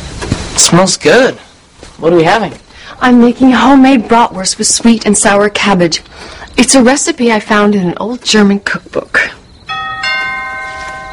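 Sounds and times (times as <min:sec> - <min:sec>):
speech: 0:00.6 - 0:09.4
two-tone doorbell chime: 0:09.7 - 0:11.1.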